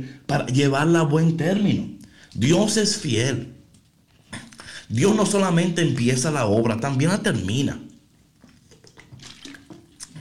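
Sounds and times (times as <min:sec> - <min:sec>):
speech: 0:00.0 - 0:03.6, 0:04.3 - 0:07.8
person sipping water: 0:04.0 - 0:04.9, 0:08.0 - 0:10.1.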